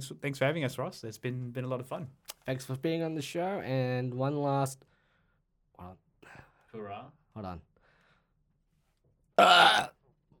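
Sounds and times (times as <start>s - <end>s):
speech: 0.0s - 4.9s, 5.8s - 6.0s, 6.8s - 7.7s, 9.4s - 9.9s
loud burp: 9.4s - 10.0s.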